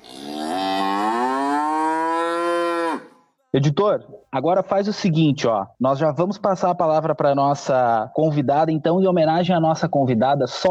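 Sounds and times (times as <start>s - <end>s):
cow mooing: 0.0s - 3.2s
speech: 3.6s - 10.7s.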